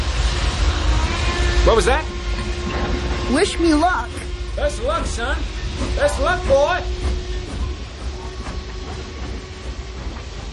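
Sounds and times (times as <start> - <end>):
train departing along the tracks: 0.0 - 10.5
speech: 1.7 - 2.2, 3.3 - 7.2
faint rhythmic clacking of train on tracks: 2.1 - 10.5.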